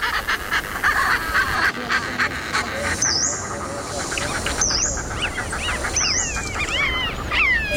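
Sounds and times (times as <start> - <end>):
Richard's pipit giving harsh rasping calls: 0.0 - 7.7
chatter of many different migratory birds: 0.0 - 7.7.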